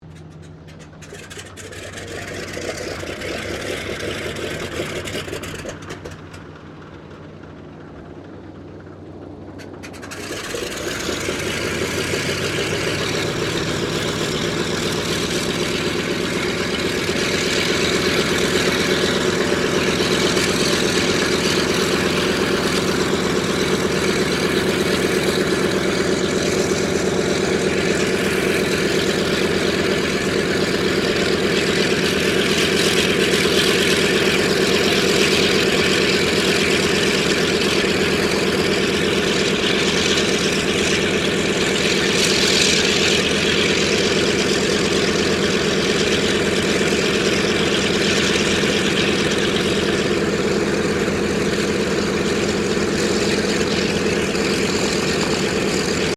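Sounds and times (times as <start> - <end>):
Douglas DC3 aircraft engine starting: 0.0 - 56.1.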